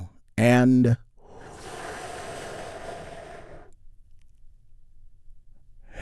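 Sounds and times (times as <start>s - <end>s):
big deep breath drawn in during a guided relaxation exercise: 1.2s - 3.8s.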